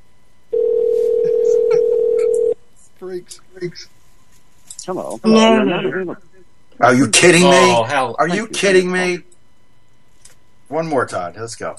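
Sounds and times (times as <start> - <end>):
steady electronic ringback tone of an outgoing phone call heard through the line: 0.6 - 2.6
speech: 3.1 - 4.0, 4.8 - 9.3, 10.7 - 11.7.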